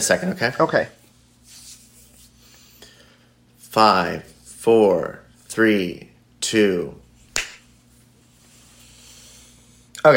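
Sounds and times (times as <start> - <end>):
speech: 0.0 - 1.0, 3.7 - 7.0
single sharp hand clap for syncing: 7.3 - 7.6.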